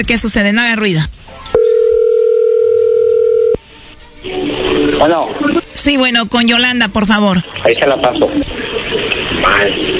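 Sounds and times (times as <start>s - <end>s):
speech: 0.0s - 1.2s, 5.0s - 8.7s, 9.3s - 9.9s
telephone dial tone while a call is placed: 1.6s - 3.6s.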